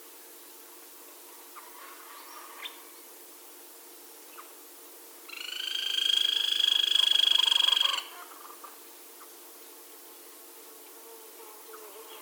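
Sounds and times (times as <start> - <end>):
grey-crowned woodpecker rattle call: 5.3 - 8.2.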